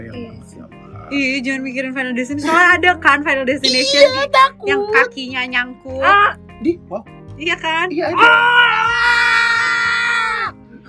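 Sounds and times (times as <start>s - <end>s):
speech: 0.0s - 9.4s
person screaming: 8.2s - 10.6s.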